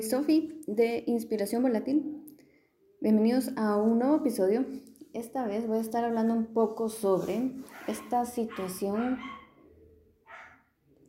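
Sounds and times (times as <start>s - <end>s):
speech: 0.0s - 2.2s, 3.0s - 9.4s
dog yapping: 7.7s - 9.6s, 10.3s - 10.7s
dogs barking: 7.7s - 10.8s.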